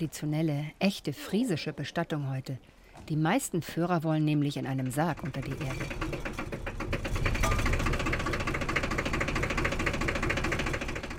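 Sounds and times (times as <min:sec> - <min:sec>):
speech: 0:00.0 - 0:06.3
old forklift engine running: 0:04.3 - 0:11.1.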